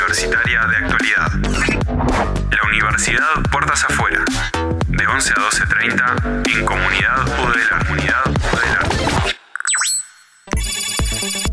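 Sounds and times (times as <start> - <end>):
speech: 0.2 - 2.3, 2.9 - 8.5
electronic ringtone of an incoming phone call: 9.6 - 11.5.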